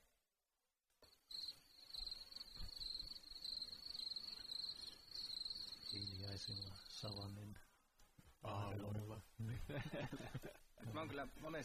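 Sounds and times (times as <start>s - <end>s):
steady high-pitched cricket chirp: 1.0s - 7.4s
speech: 6.0s - 7.7s, 8.4s - 11.6s
laughter: 9.4s - 11.2s.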